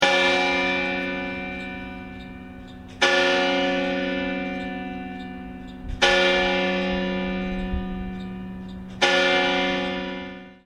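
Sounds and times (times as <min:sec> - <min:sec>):
bells ringing: 0:00.0 - 0:10.6.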